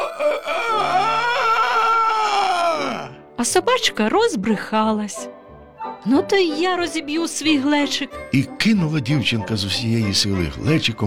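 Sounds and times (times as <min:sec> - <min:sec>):
rooster crowing: 0:00.0 - 0:03.1
speech: 0:03.4 - 0:05.4, 0:06.0 - 0:11.0.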